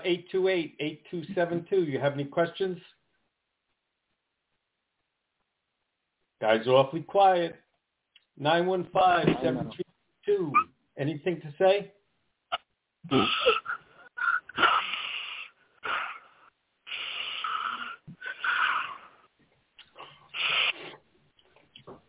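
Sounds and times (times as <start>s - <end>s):
speech: 0.0s - 3.0s, 6.4s - 7.6s, 8.4s - 12.0s, 13.0s - 13.8s
heavy raspy wheezy breathing: 13.1s - 21.0s.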